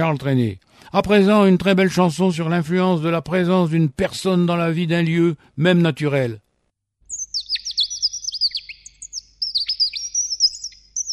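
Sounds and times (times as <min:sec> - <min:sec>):
speech: 0:00.0 - 0:06.4
bird chirping: 0:07.0 - 0:11.1.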